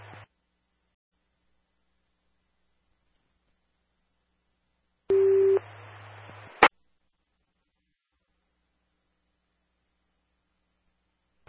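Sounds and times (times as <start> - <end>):
crackling radio static: 0.0 - 0.3, 5.1 - 6.8.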